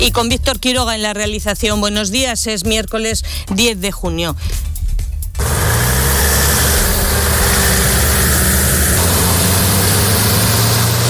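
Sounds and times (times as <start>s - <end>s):
speech: 0.0s - 4.7s
military emergency truck engines idling: 5.4s - 11.0s.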